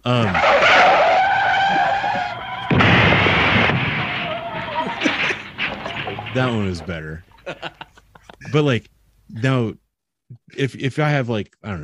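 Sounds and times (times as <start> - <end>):
car tires skidding and screeching: 0.1 - 6.9
car crash: 0.3 - 7.8
debris crunching and rattling: 0.4 - 7.5
laughter: 4.6 - 8.8
speech: 6.4 - 7.7, 8.5 - 11.8.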